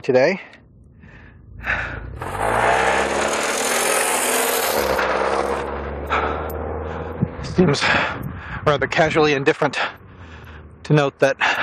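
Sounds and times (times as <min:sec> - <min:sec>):
speech: 0:00.0 - 0:00.6, 0:01.6 - 0:02.6, 0:07.6 - 0:10.0, 0:10.9 - 0:11.6
car passing by with engine hum and road noise: 0:02.1 - 0:08.1.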